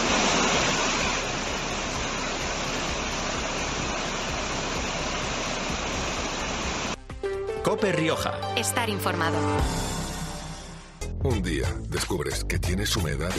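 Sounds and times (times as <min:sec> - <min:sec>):
swollen river rushing where the Iregua flows into the Ebro: 0:00.0 - 0:07.0
speech: 0:07.7 - 0:09.9, 0:11.2 - 0:13.3.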